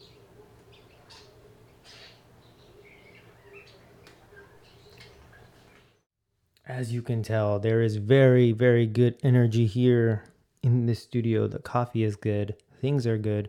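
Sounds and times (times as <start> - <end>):
birds chirping and twittering: 0.0 - 6.1
speech: 6.7 - 13.4.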